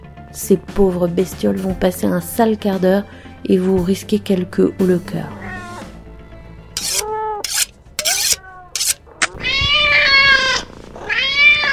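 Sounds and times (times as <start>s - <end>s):
speech: 0.4s - 5.5s
cat meowing: 5.3s - 5.9s, 6.8s - 7.4s, 8.0s - 11.7s.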